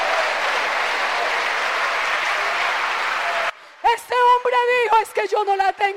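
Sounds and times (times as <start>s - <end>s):
crowd applauding during a sermon: 0.0s - 3.6s
speech: 4.4s - 5.9s.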